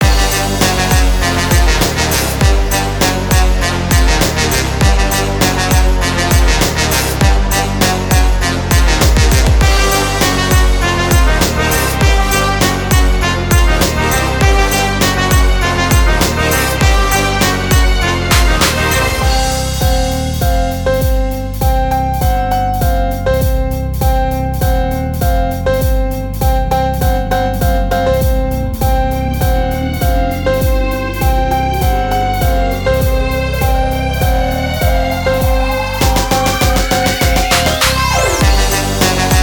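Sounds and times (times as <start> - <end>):
jazz club music: 0.0 - 39.4.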